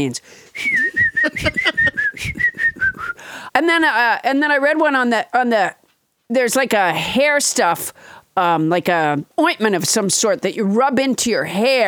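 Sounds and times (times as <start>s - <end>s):
speech: 0.0s - 1.6s, 3.6s - 11.8s
person imitating a steady high whistling tone by mouth: 0.6s - 3.2s.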